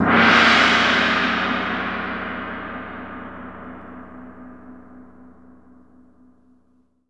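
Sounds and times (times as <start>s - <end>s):
gong: 0.0s - 6.7s.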